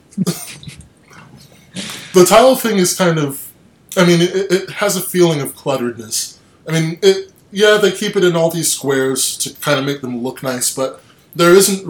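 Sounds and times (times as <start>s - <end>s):
faint noise: 0.0s - 11.8s
person coughing: 0.2s - 0.8s
speech: 2.1s - 11.8s.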